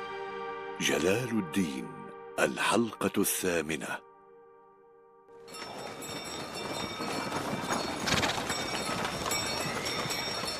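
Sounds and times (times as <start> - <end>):
speech: 0.8 - 4.1
horse hooves clip-clopping: 5.4 - 10.5.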